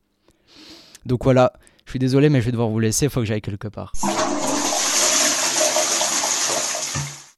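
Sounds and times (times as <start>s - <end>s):
speech: 1.0s - 4.1s
toilet flushing with rush of water and gurgling: 4.0s - 7.3s.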